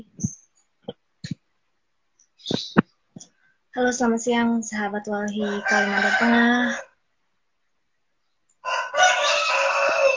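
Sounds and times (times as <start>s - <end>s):
speech: 3.8s - 6.9s
rooster crowing: 5.4s - 7.0s, 8.6s - 10.1s.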